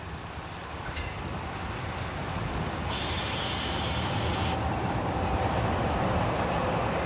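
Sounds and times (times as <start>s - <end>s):
diesel railbus running along the line between Bismarck and Hohenbusch in Germany: 0.0s - 7.0s.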